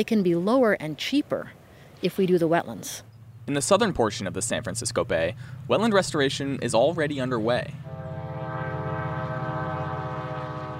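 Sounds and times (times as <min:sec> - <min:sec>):
speech: 0:00.0 - 0:07.9
low rumble of a passing commuter train: 0:03.1 - 0:10.7
commuter train horn blaring at a marsh park on San Francisco Bay: 0:07.8 - 0:10.7.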